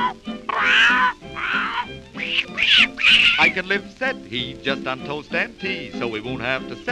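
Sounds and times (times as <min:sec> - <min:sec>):
human voice imitating an old tomcat meowing: 0:00.0 - 0:03.6
speech: 0:03.6 - 0:06.8.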